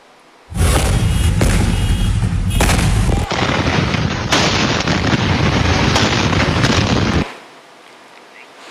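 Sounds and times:
massive explosion at a fire site roaring: 0.5s - 7.2s.

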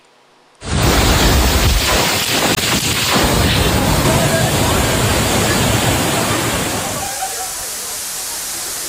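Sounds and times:
violent storm with strong wind gusts: 0.6s - 7.2s.

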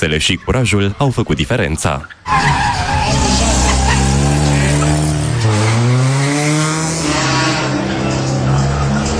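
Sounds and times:
speech: 0.0s - 3.4s
race car tires squealing and skidding through slalom manoeuvres: 1.9s - 9.1s
race car engine screaming on a slalom course: 2.3s - 9.1s.

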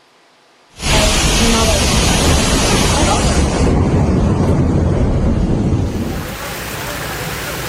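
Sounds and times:
rushing floodwater after torrential rain in Varna, Bulgaria: 0.8s - 7.6s.

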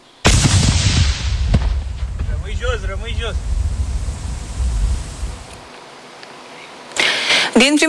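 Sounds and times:
controlled detonation of explosive-laden drone on a field in Tulcea County Romania: 0.2s - 5.7s
sharp thud: 0.3s - 5.6s
sustained rumbling roar and debris-like crackle after drone detonation: 0.3s - 5.7s
speech: 2.6s - 3.6s, 7.6s - 7.8s.

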